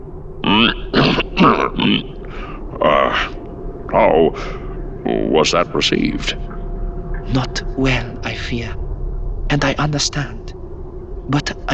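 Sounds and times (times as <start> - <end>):
person clearing throat in rough gravelly bursts: 0.4 - 3.3
speech: 1.4 - 2.2, 2.8 - 3.3, 3.9 - 6.5, 7.3 - 8.8, 9.5 - 10.4, 11.3 - 11.7.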